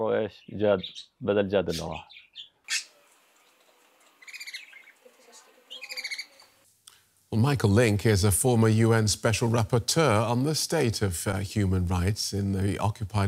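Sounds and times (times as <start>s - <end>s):
speech: 0.0s - 2.5s, 7.3s - 13.2s
pet bird squawking: 0.4s - 6.5s
pet bird rapid high-pitched chirping: 0.8s - 6.5s.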